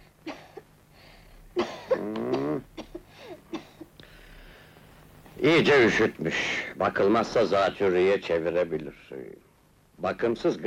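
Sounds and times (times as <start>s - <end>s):
child coughing: 1.6s - 3.8s
speech: 5.4s - 9.4s, 10.0s - 10.6s.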